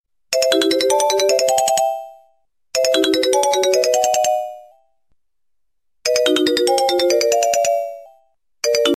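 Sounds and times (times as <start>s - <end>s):
Sony phone ringtone: 0.3s - 5.0s, 6.1s - 8.9s.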